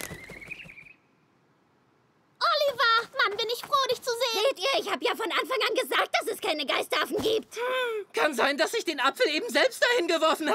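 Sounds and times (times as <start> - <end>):
owl flapping its wings: 0.0 - 1.0
speech: 3.3 - 10.5.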